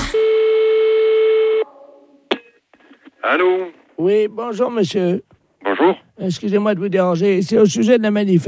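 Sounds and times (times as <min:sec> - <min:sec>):
telephone beep during a call: 0:00.2 - 0:01.6
speech: 0:03.3 - 0:08.4.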